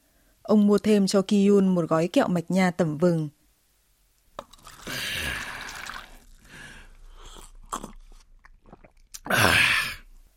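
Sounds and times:
speech: 0.5s - 3.4s
person gulping: 4.3s - 10.2s
liquor pouring into a paper cup: 4.4s - 9.3s.

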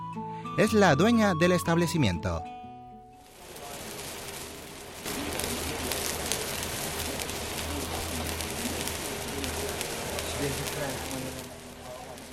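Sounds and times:
speech: 0.6s - 2.6s
pancakes frying in oil on a long wide metal griddle in a kitchen: 3.2s - 12.3s.

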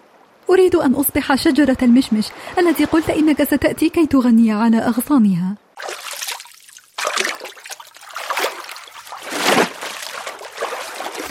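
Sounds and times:
speech: 0.5s - 5.6s
sea water splashing and swishing around someone wading: 1.4s - 4.3s, 5.7s - 11.3s.

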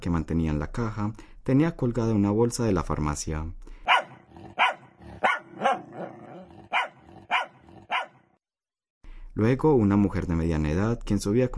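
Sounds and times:
speech: 0.0s - 3.6s, 9.4s - 11.5s
dog barking: 3.9s - 8.3s.

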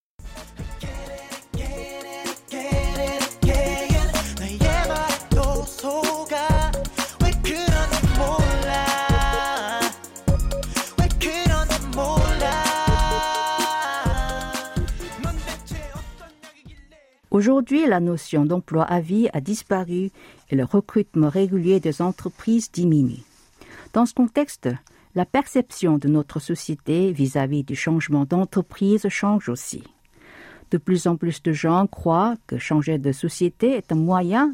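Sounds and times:
upbeat pop song with thumping beat, bright synths and sung melody: 0.2s - 17.3s
speech: 17.4s - 23.3s, 23.9s - 29.9s, 30.7s - 34.5s.

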